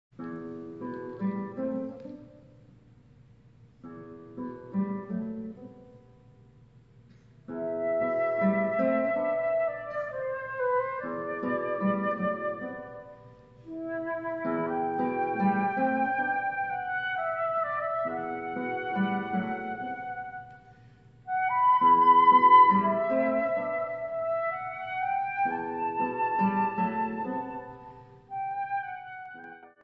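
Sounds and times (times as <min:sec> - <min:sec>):
guitar: 0:00.1 - 0:29.8
flute: 0:07.5 - 0:29.8.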